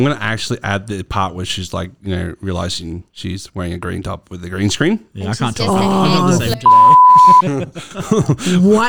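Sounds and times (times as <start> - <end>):
speech: 0.0 - 8.8
laughter: 5.5 - 8.8
loud steady censor bleep tone: 6.6 - 7.4.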